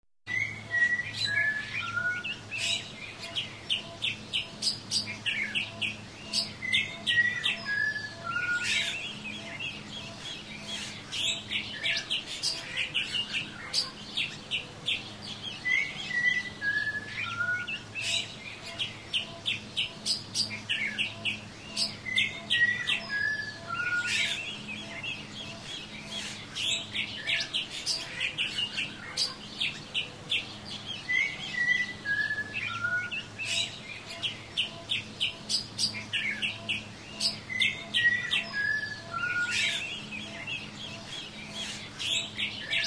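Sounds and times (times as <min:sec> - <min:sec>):
forest ambience: 0:00.3 - 0:42.8.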